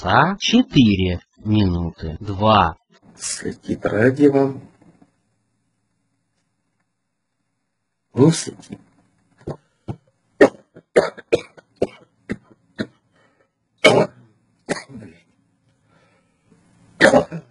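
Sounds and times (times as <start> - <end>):
speech: 0.0 - 4.7, 8.2 - 8.9
harsh hacking coughing fit: 10.4 - 13.0, 13.8 - 15.1, 17.0 - 17.5.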